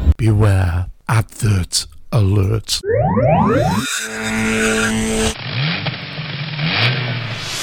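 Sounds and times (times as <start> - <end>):
speech: 0.2 - 5.9
Bentley car engine revving: 3.5 - 7.5.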